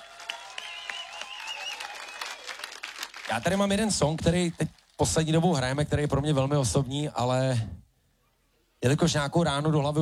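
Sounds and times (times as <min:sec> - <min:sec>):
audience applauding at a concert: 0:00.0 - 0:04.9
speech: 0:03.3 - 0:07.8, 0:08.8 - 0:10.0.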